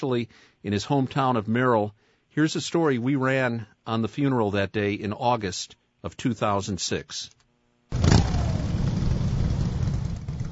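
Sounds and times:
speech: 0:00.0 - 0:08.1
motorcycle procession engines revving: 0:07.9 - 0:10.5.

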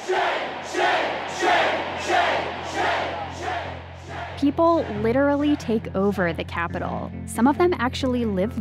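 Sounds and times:
large protest crowd chanting in unison in downtown Madison: 0:00.0 - 0:05.9
speech: 0:04.4 - 0:08.6.

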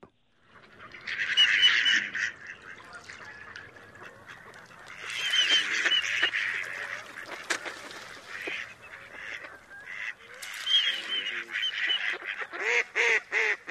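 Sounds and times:
mallard hen quacking: 0:00.8 - 0:13.6
mallard drake courtship whistles: 0:04.3 - 0:07.0, 0:08.3 - 0:13.2.

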